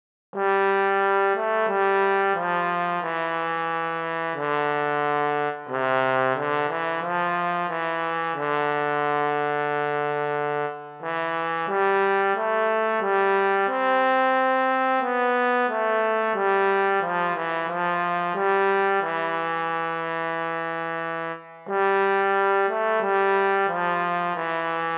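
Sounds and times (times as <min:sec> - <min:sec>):
solo trombone: 0:00.4 - 0:24.9.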